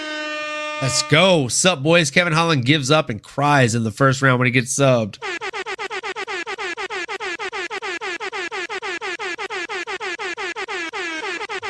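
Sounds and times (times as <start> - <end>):
loud air horn blasting in rapid stuttering bursts: 0.0 - 1.6, 6.3 - 11.6
speech: 0.8 - 5.3.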